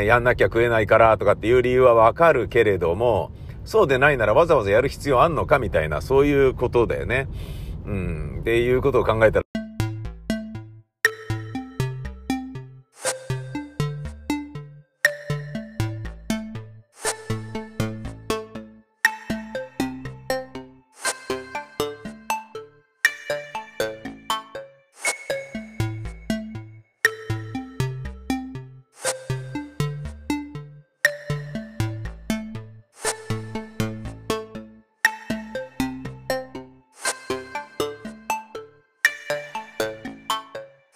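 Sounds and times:
speech: 0.0s - 9.4s
smartphone ringtone playing a repeating melodic tune for an incoming call: 9.6s - 40.9s.

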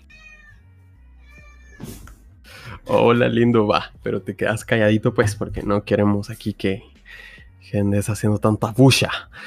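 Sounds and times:
domestic cat meowing: 0.0s - 2.1s
speech: 2.9s - 9.4s.

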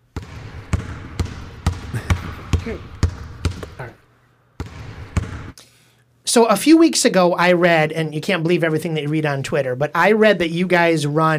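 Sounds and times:
basketball dribble bounces: 0.0s - 4.0s, 4.6s - 5.6s
speech: 2.6s - 3.0s, 6.3s - 11.3s.

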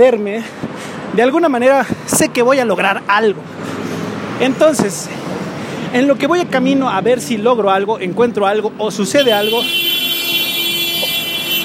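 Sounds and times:
speech: 0.0s - 3.8s, 4.4s - 5.3s, 5.9s - 10.0s
faint traffic hum: 0.0s - 11.6s
car horn honking in traffic: 9.2s - 11.6s.

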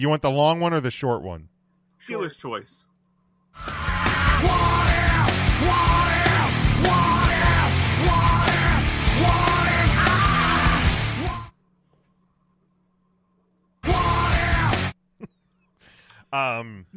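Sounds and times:
speech: 0.0s - 2.9s, 3.6s - 6.2s, 16.3s - 16.9s
podcast sounder rock song with yelled screaming vocals: 3.6s - 11.5s, 13.8s - 15.0s.

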